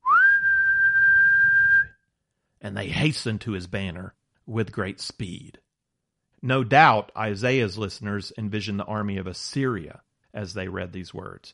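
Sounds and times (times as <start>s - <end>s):
person whistling as a call: 0.0s - 2.0s
speech: 2.6s - 5.6s, 6.4s - 11.5s.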